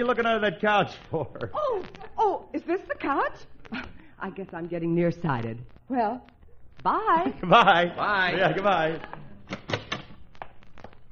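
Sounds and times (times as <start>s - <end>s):
speech: 0.0s - 9.6s
door opening and closing: 9.4s - 10.2s.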